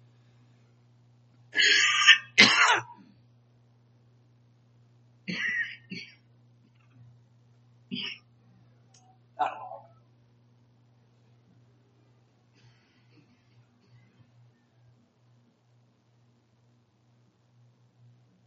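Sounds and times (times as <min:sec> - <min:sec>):
low steady hum: 0:00.0 - 0:18.4
harsh coughs: 0:01.6 - 0:03.0
throat-clearing rasps: 0:01.6 - 0:03.0, 0:07.9 - 0:08.3, 0:09.4 - 0:10.0.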